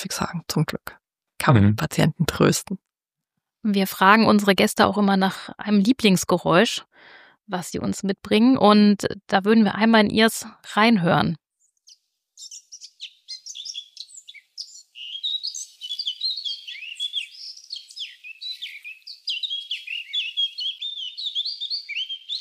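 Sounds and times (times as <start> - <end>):
speech: 0.0 - 2.8, 3.6 - 11.4
birds chirping and twittering: 11.6 - 22.3.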